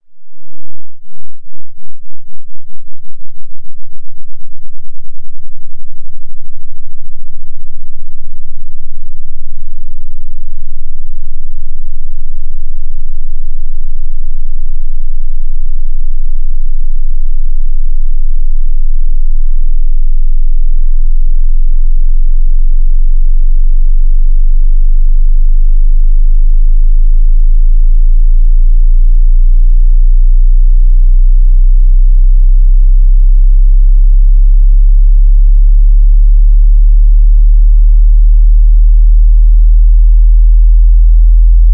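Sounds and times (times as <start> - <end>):
0 Hz to 100 Hz frequency sweep tone: 0.0 - 5.3, 17.4 - 41.6.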